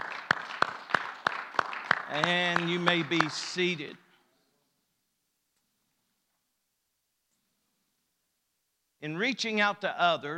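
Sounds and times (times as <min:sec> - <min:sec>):
congregation clapping hands sharply: 0:00.0 - 0:03.7
scattered applause of a congregation: 0:00.0 - 0:03.8
speech: 0:02.1 - 0:04.0, 0:09.0 - 0:10.3.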